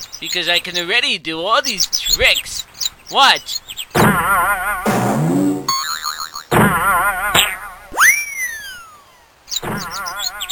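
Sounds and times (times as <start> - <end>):
speech: 0.2 - 3.6, 4.2 - 5.2
cartoon boing sound effects: 4.0 - 8.8.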